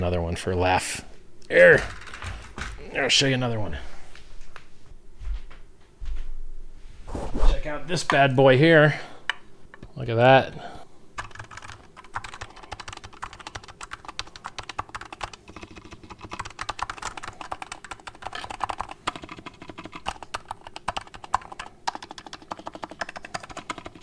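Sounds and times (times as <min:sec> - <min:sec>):
speech: 0:00.0 - 0:02.0, 0:03.0 - 0:03.9, 0:07.3 - 0:09.1, 0:10.0 - 0:10.8
mechanical keyboard typing: 0:11.2 - 0:24.0.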